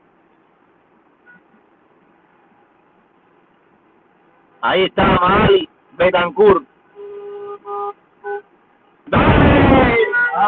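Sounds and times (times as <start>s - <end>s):
dense traffic noise from a caravan of passing cars: 0.0s - 10.4s
speech: 4.6s - 6.7s
car horns honking: 6.9s - 10.4s.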